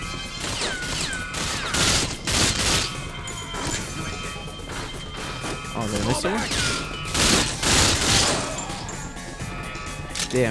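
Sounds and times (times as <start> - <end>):
gunfire in a video game shooter: 0.1 - 8.9
speech: 5.9 - 6.7.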